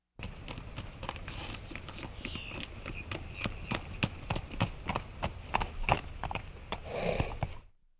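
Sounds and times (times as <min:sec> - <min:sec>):
horse trotting outside: 0:00.2 - 0:07.7
horse snorting outside: 0:06.8 - 0:07.6.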